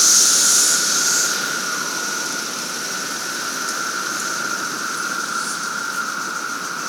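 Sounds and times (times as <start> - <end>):
17-year periodical cicadas droning in a capital city: 0.0 - 6.8.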